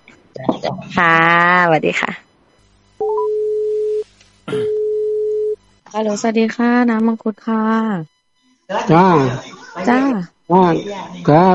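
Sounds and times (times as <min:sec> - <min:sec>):
speech: 0:00.6 - 0:02.3, 0:06.0 - 0:08.1, 0:08.7 - 0:11.5
telephone ringback tone while a call connects: 0:03.0 - 0:05.6.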